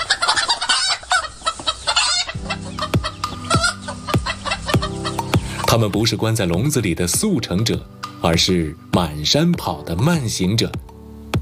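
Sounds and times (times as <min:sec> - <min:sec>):
Three Gorges black chickens clucking and crowing: 0:00.0 - 0:05.8
speech: 0:05.7 - 0:10.9.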